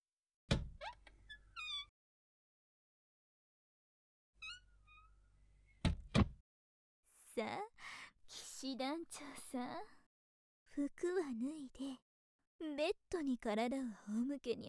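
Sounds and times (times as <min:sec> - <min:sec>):
heavy door shutting with loud thuds: 0:00.5 - 0:00.8, 0:05.8 - 0:06.4
speech: 0:07.4 - 0:07.8, 0:08.6 - 0:10.0, 0:10.8 - 0:12.0, 0:12.6 - 0:14.6.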